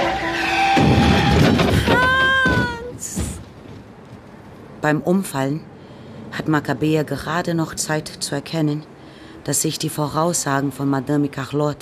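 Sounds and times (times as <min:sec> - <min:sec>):
yellow Mercedes skidding with tire squeal: 0:00.0 - 0:02.1
loud broadband noisy rush of car hitting a pedestrian: 0:00.4 - 0:02.0
speech: 0:04.8 - 0:05.7, 0:06.4 - 0:11.8.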